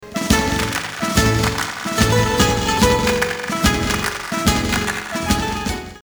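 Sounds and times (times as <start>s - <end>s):
festive dance tune: 0.0s - 6.0s.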